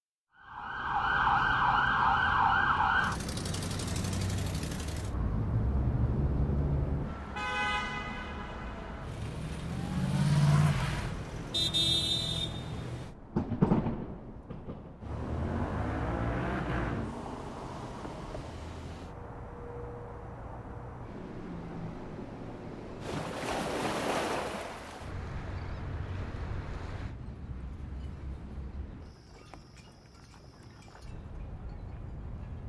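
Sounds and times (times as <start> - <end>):
urban ambience in the USA: 0.3 - 32.6.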